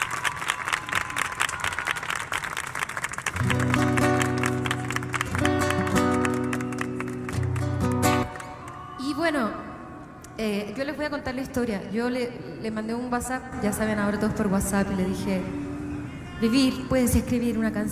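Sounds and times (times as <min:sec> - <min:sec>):
audience applauding a singer: 0:00.0 - 0:09.0
speech: 0:10.4 - 0:15.6, 0:16.4 - 0:17.8.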